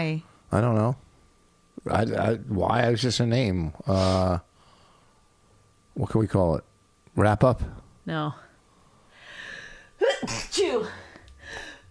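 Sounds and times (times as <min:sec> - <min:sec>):
speech: 0:00.0 - 0:01.0, 0:01.8 - 0:04.5, 0:06.0 - 0:08.4, 0:10.2 - 0:11.0
soft hiss: 0:00.0 - 0:11.8
person sneezing forcefully: 0:10.0 - 0:10.8.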